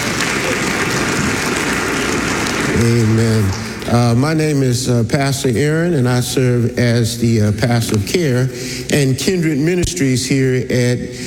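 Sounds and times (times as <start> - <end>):
audience applause: 0.0 - 4.2
speech: 2.8 - 11.2.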